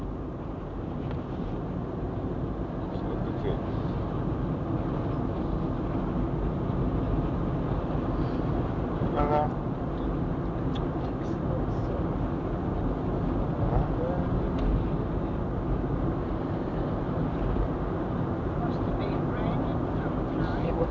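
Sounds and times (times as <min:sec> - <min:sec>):
steady dense low rumble of road traffic: 0:00.0 - 0:20.8.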